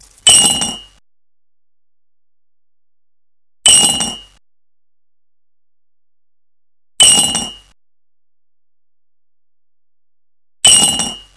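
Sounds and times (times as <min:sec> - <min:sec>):
coin: 0:00.0 - 0:01.0, 0:07.0 - 0:07.7, 0:10.7 - 0:11.3.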